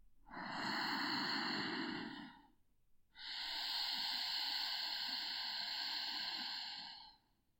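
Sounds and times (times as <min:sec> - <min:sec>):
ujjayi breathing through a constricted throat: 0:00.3 - 0:02.5, 0:03.2 - 0:07.3.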